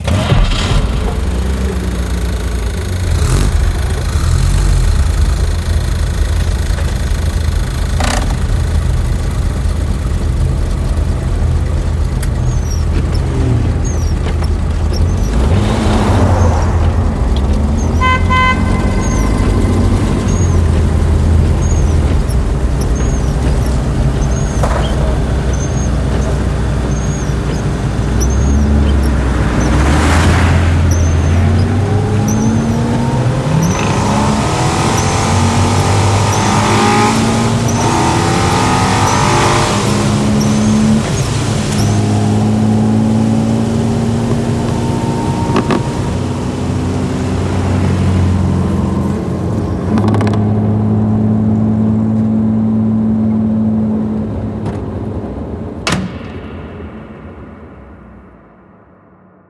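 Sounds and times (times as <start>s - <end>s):
antique automobiles: 0.0s - 57.8s.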